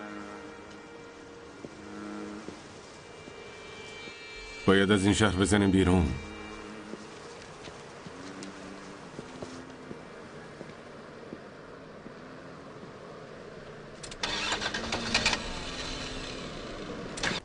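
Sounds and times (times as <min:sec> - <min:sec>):
speech: 0:04.7 - 0:06.3
car engine starter cranking but failing to start: 0:14.0 - 0:17.4.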